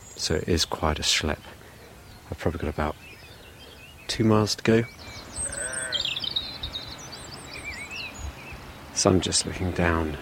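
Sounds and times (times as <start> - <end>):
thin high bird chirps: 0.0 - 10.1
speech: 0.2 - 1.6, 2.3 - 3.1, 4.1 - 5.0, 9.0 - 10.1
grazing sheep bleating in a steep rushy meadow on a mountain: 5.4 - 6.2.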